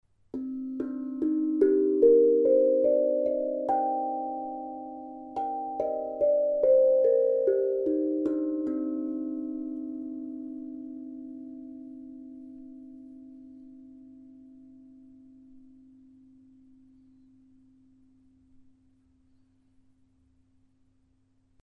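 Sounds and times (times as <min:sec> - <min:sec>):
pygmy handpan: 0:00.3 - 0:17.4.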